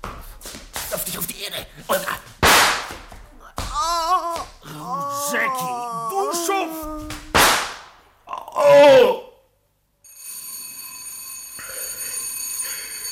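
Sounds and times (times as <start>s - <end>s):
speech: 1.0s - 2.3s
gunshots fired at a man: 2.4s - 3.0s, 7.3s - 8.0s
brief shout: 3.6s - 7.6s, 8.3s - 9.4s
loud wavering cry: 3.7s - 7.4s, 8.3s - 9.4s
bell ringing to summon a servant: 10.0s - 13.1s.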